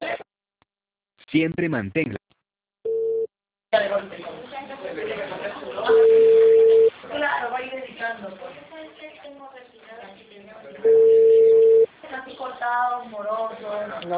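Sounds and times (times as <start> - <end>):
speech: 1.3 - 2.2
thin phone-filtered voices talking: 1.3 - 2.2, 3.8 - 14.1
steady telephone tone on a line after a dropped call: 2.9 - 3.3, 5.9 - 6.9, 10.8 - 11.9.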